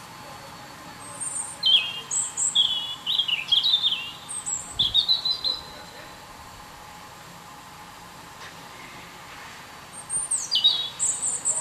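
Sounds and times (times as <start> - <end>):
European robin singing, Erithacus rubecula: 0.2 - 6.2, 9.9 - 11.5.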